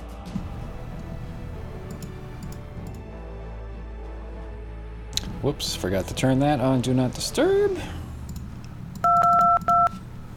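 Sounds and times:
low hum: 0.4 - 3.0, 5.2 - 10.3
speech: 5.4 - 8.0
DTMF telephone keypad dialing tones: 9.0 - 10.0.

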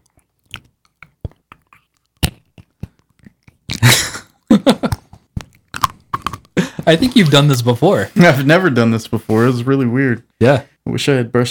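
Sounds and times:
crunching and chewing on a hard plastic object: 0.0 - 7.4
speech: 6.9 - 11.4.

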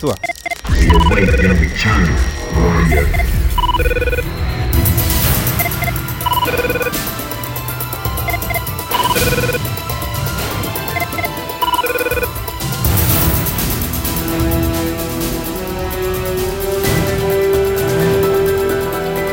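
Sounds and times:
speech: 0.0 - 4.2
busy dense backdrop: 0.0 - 19.3
loud electronic telephone ringtone from a TV series: 0.2 - 12.8.

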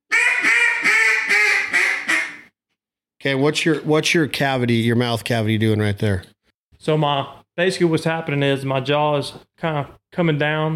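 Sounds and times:
duck call imitating hen mallard quacks: 0.1 - 2.5
speech: 3.2 - 10.7.

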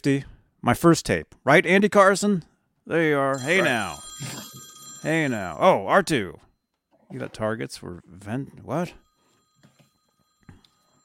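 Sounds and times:
speech: 0.0 - 6.5, 7.1 - 9.0
telephone ringing with high electronic warble: 3.3 - 6.5, 9.0 - 11.0.

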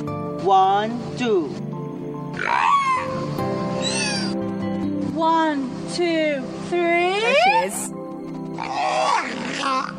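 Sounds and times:
speech: 0.4 - 1.7, 2.3 - 2.8, 5.2 - 7.9
whale call: 2.4 - 3.2, 3.8 - 4.4, 7.1 - 7.9, 8.6 - 9.9.

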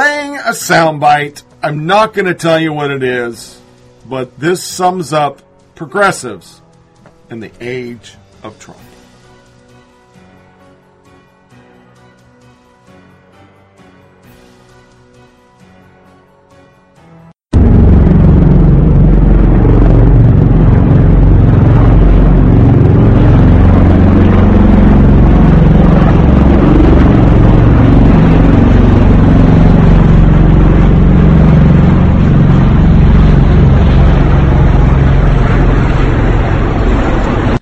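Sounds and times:
speech: 0.5 - 6.6, 7.3 - 8.9
helicopter engine and rotor roaring overhead in California: 17.6 - 37.6.

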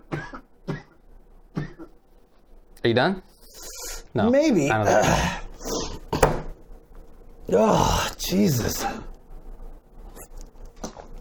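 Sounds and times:
man coughing: 0.0 - 1.9
speech: 2.8 - 3.3, 4.2 - 5.4, 7.5 - 9.1.

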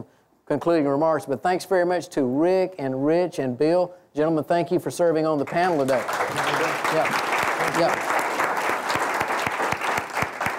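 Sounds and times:
speech: 0.5 - 8.0
room full of people applauding: 5.6 - 10.5.

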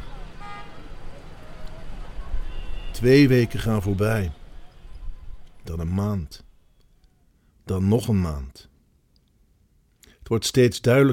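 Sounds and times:
car horn toot: 0.0 - 0.9, 2.3 - 5.0
street traffic rumble with buses and cars: 0.0 - 7.0
speech: 3.0 - 4.4, 5.6 - 6.5, 7.7 - 8.7, 10.3 - 11.1.

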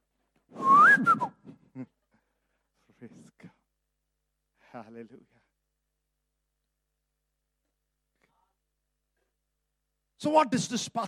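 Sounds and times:
person whistling a short rising-and-falling tune: 0.6 - 1.6
speech: 4.8 - 5.4, 10.2 - 11.0.

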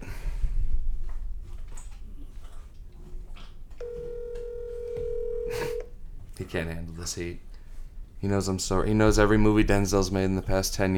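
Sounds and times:
telephone ringing tone of a call being placed: 3.8 - 5.9
speech: 6.4 - 7.5, 8.2 - 10.9.

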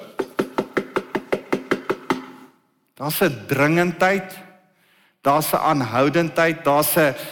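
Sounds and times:
urgent knocking on wood demonstrating knocking at a door: 0.0 - 2.5
speech: 3.0 - 4.5, 5.2 - 7.2.

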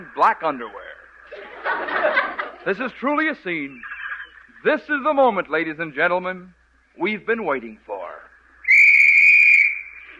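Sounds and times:
speech: 0.0 - 0.8, 1.6 - 3.9, 4.6 - 7.9
laughter: 1.3 - 3.0
loud sustained whistle blast on a white beach: 8.6 - 10.1.

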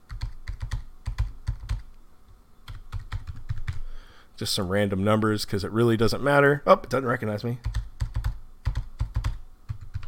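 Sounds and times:
typing a password on a computer keyboard: 0.0 - 1.9, 2.7 - 3.9, 7.6 - 10.0
speech: 4.4 - 7.8.

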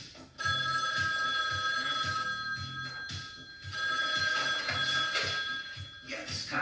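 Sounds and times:
telephone ringing on the line after dialing: 0.4 - 6.5.

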